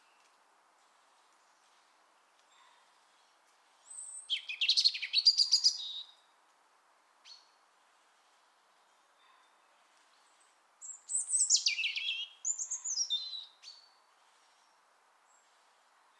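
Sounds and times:
European robin Erithacus rubecula giving shrill whistles and descending trills: 0:03.8 - 0:06.2, 0:10.8 - 0:13.9.

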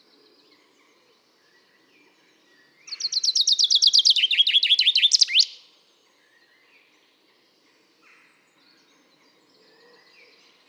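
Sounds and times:
common chaffinch Fringilla coelebs singing: 0:02.9 - 0:05.6.

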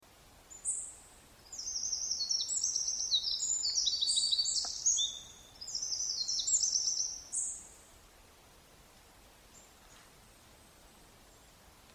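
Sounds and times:
Eurasian wren Troglodytes troglodytes song with high rattling trills: 0:00.5 - 0:07.8.

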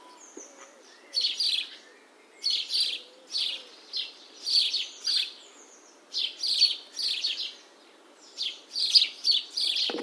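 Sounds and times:
House sparrow chirps, Passer domesticus: 0:00.0 - 0:10.0.

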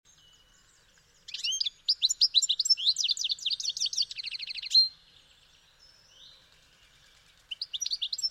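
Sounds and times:
European goldfinch Carduelis carduelis twittering: 0:00.8 - 0:05.0, 0:06.1 - 0:08.3.

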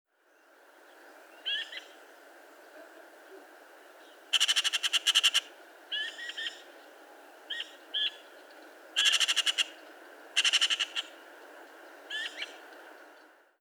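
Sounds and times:
Eurasian magpie Pica pica giving shorter calls: 0:04.3 - 0:06.6, 0:09.0 - 0:09.7, 0:10.4 - 0:11.1.

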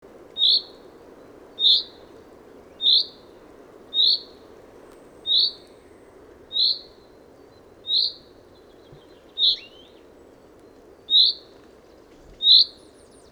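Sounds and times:
common chaffinch Fringilla coelebs calling: 0:00.4 - 0:00.8, 0:01.6 - 0:02.0, 0:02.7 - 0:03.2, 0:03.9 - 0:04.4, 0:05.2 - 0:05.6, 0:06.5 - 0:07.0, 0:07.8 - 0:08.3, 0:09.3 - 0:09.9.

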